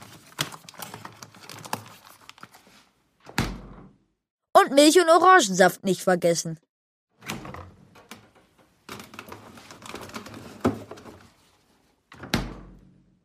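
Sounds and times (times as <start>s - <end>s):
refrigerator door swung shut with a firm thud: 3.3s - 3.9s, 12.2s - 12.8s
speech: 4.7s - 6.7s.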